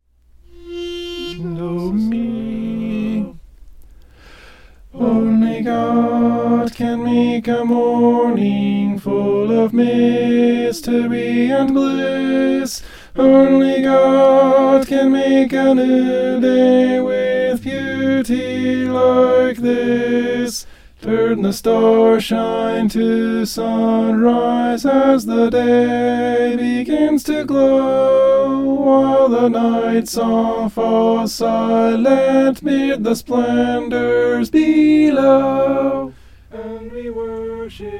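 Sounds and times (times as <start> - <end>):
tenor voice singing: 0.5 - 3.4, 4.9 - 37.9.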